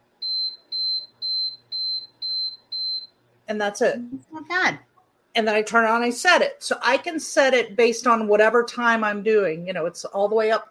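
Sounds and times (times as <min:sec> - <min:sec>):
electronic countdown timer beeping as it finishes: 0:00.2 - 0:03.1
speech: 0:03.5 - 0:10.6.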